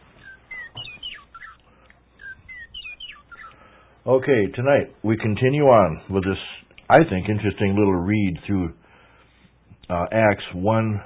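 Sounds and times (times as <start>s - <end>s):
small bird chirping: 0.0s - 3.7s
speech: 4.0s - 8.8s, 9.9s - 11.0s.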